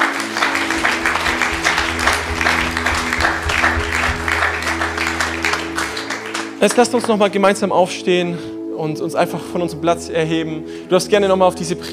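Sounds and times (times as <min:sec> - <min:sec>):
church audience applauding after a sermon and prayer: 0:00.0 - 0:06.6
low sustained organ or keyboard tone: 0:00.1 - 0:06.0
speech: 0:06.6 - 0:11.9.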